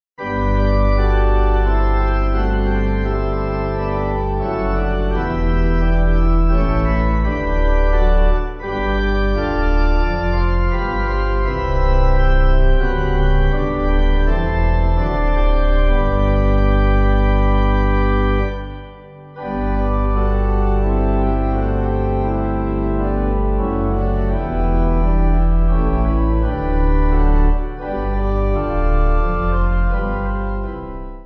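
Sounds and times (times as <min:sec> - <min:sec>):
pipe organ: 0:00.2 - 0:31.2.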